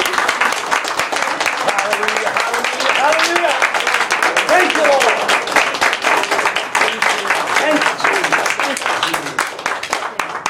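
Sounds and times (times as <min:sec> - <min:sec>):
crowd clapping in praise: 0:00.0 - 0:10.4.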